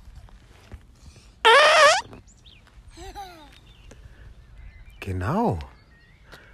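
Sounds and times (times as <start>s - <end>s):
roaring beetle call: 1.5s - 2.1s
speech: 5.0s - 5.7s.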